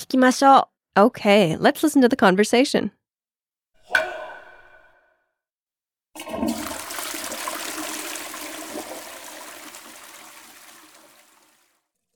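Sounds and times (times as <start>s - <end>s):
speech: 0.1s - 3.0s
broken toilet flushing and water running without stopping: 6.2s - 11.8s.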